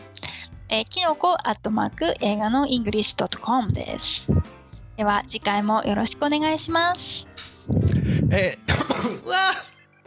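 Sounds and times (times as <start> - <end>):
speech: 0.7 - 9.7
person in a coughing fit with harsh coughs: 8.1 - 9.7
throat-clearing bursts: 8.3 - 9.7.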